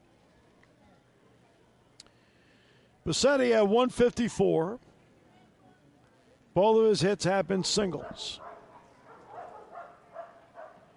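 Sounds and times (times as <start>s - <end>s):
speech: 3.1s - 4.9s, 6.6s - 8.4s
dog barking in a baseball stadium concourse: 7.6s - 10.9s.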